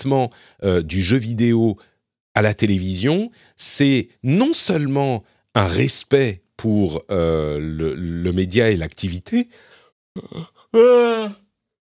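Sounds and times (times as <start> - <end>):
speech: 0.0 - 11.4
tired man yawning: 10.2 - 11.5.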